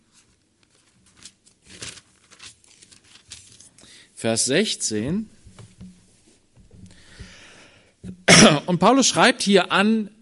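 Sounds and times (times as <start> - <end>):
thin Bible pages being turned during an evening church service: 0.0 - 3.8
speech: 4.2 - 5.4, 8.7 - 10.2.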